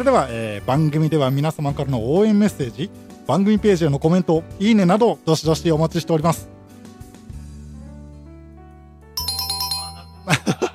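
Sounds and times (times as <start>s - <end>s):
speech: 0.0s - 6.6s
bright electronic doorbell chime: 9.2s - 10.7s.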